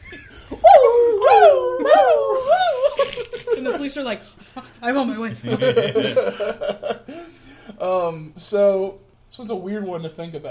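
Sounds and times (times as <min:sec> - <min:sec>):
voice imitating a howling dog alarm: 0:00.6 - 0:03.0
laughter: 0:01.8 - 0:07.4
speech: 0:03.9 - 0:07.1, 0:07.8 - 0:10.5.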